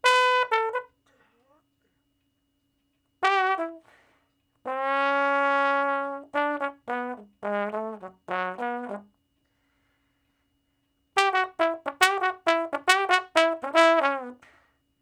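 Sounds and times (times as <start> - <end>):
slow R&B blues trombone solo: 0.0 - 1.1, 3.2 - 4.0, 4.6 - 9.2, 11.2 - 14.6.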